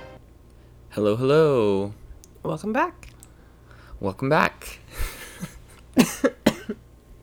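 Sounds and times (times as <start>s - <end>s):
speech: 1.0s - 3.1s, 4.0s - 4.8s
woman with a slight cough coughing dryly: 6.0s - 6.9s.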